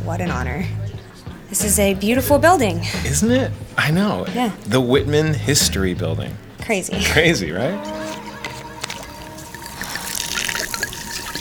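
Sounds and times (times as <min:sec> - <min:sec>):
speech: 0:00.1 - 0:08.2
gasoline pouring steadily from a bottle: 0:08.0 - 0:11.3.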